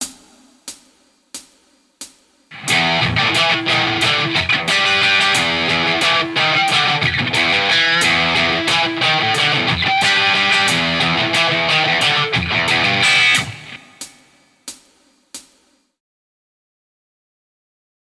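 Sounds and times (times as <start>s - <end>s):
guitar lick: 2.5s - 14.1s.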